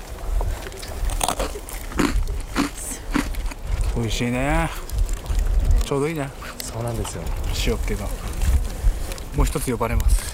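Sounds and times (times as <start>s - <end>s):
chewing crackles: 0.0s - 10.3s
crunchy bean-paste sandwich biscuit being bitten: 1.1s - 3.9s
speech: 4.0s - 4.8s, 5.9s - 8.3s, 9.4s - 10.3s.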